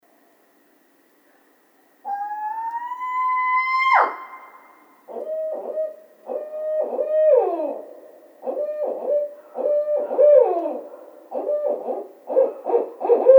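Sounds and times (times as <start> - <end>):
barred owl hooting: 2.0 - 13.3.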